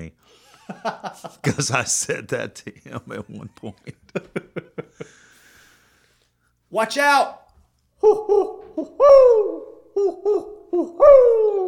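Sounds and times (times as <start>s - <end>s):
speech: 0.0s - 5.2s, 6.7s - 7.4s, 8.0s - 11.6s
owl hooting: 8.0s - 11.6s.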